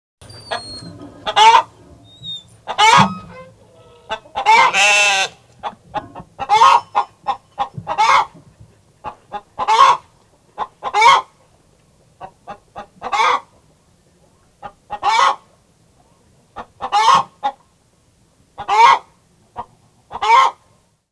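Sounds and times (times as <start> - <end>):
hen clucking: 0.3 - 11.3, 12.2 - 13.6, 14.6 - 15.5, 16.6 - 17.6, 18.6 - 20.6.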